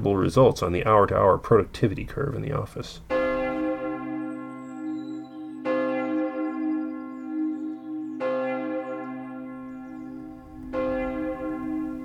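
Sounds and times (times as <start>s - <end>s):
speech: 0.0s - 3.2s
heavy iron church bell tolling: 3.1s - 12.0s.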